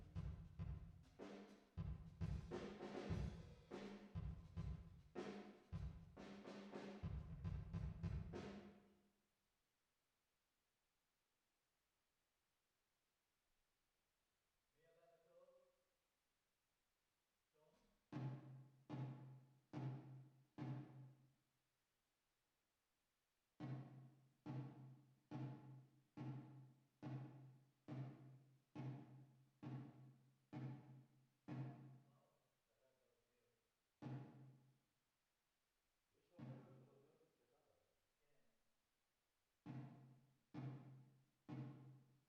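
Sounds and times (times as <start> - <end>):
drums with reverb: 0.0 - 8.8, 18.2 - 21.2, 23.6 - 32.0, 34.0 - 34.6, 39.7 - 42.0.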